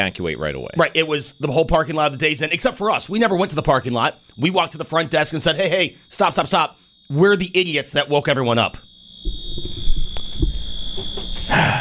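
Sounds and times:
speech: 0.0 - 9.4, 11.0 - 11.7
fire alarm blaring: 0.8 - 11.7
knocks: 9.3 - 11.5.

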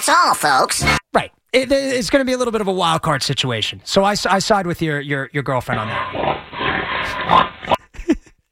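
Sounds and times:
speech: 0.1 - 6.4, 7.0 - 8.2
pig squealing and grunting: 5.7 - 7.8.

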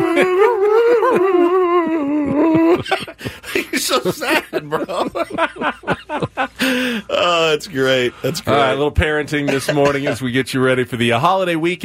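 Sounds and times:
person imitating a whimpering puppy-like cry: 0.0 - 2.9
laughter: 0.0 - 7.4, 9.3 - 10.4
speech: 0.2 - 1.5, 2.8 - 5.8, 7.5 - 11.8.

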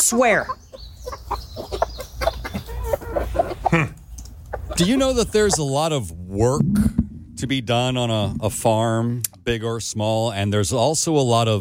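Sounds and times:
chicken clucking: 0.0 - 5.8
speech: 0.1 - 0.6, 4.8 - 11.5.

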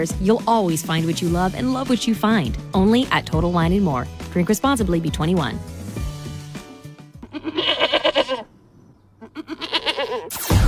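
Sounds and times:
speech: 0.0 - 5.8
goat bleating: 7.1 - 8.5, 9.2 - 10.4.

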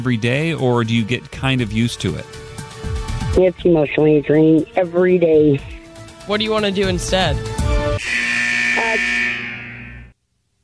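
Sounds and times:
speech: 0.0 - 2.5, 3.4 - 7.5
loud harsh electronic buzzer: 8.0 - 10.1.

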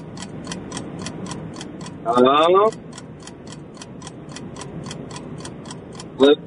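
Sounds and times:
quiz countdown timer ticking: 0.0 - 6.4
speech: 2.0 - 2.9, 6.2 - 6.4
quiz timer buzzing tone: 6.2 - 6.4.

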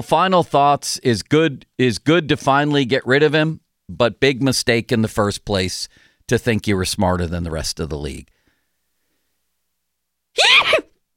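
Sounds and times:
speech: 0.0 - 8.4, 10.4 - 11.1
sneeze into a microphone: 10.4 - 11.0.

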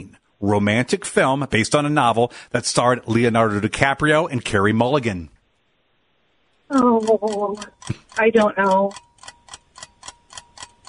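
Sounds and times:
speech: 0.0 - 5.4, 6.7 - 9.1
quiz countdown timer ticking: 6.7 - 10.8.

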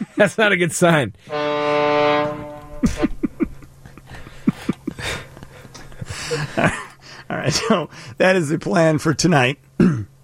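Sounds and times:
laughter: 0.0 - 0.4, 2.3 - 7.9
speech: 0.2 - 1.4, 2.8 - 3.1, 7.5 - 10.0
foghorn blast: 1.2 - 3.2.

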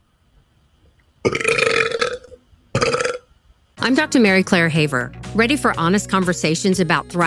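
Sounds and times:
speech: 1.2 - 1.5, 3.8 - 7.2
person imitating a burp with a throaty vocal belch: 1.2 - 3.3.

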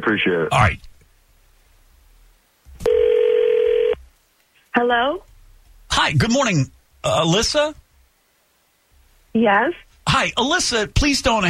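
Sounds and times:
speech: 0.0 - 0.9, 4.8 - 5.3, 6.0 - 7.8, 9.3 - 11.4
electronic ringback tone over a phone line: 2.8 - 4.0.

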